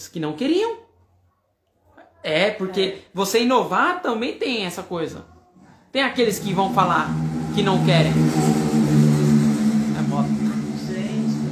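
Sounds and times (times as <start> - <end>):
speech: 0.0 - 0.9, 2.2 - 5.3, 5.9 - 8.5
motorcycle engine rumbling: 6.0 - 11.5.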